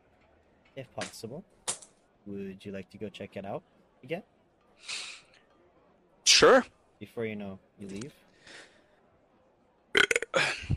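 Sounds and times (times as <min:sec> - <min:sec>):
speech: 0:00.8 - 0:01.6, 0:02.2 - 0:05.0, 0:06.4 - 0:08.2
loud burp: 0:09.9 - 0:10.6.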